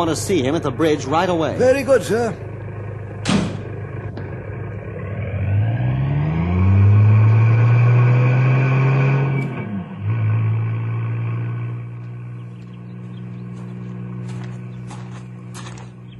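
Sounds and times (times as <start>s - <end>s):
speech: 0.0s - 2.5s
car engine revving as the car drives away: 0.0s - 16.1s
sharp clunk: 3.2s - 3.7s.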